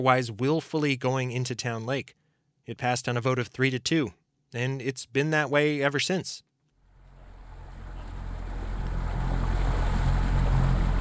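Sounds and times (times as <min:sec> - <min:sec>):
speech: 0:00.0 - 0:06.5
boat motor droning on a lake: 0:06.8 - 0:10.9
wind: 0:06.8 - 0:10.9
water rushing beneath a boat: 0:06.9 - 0:10.9.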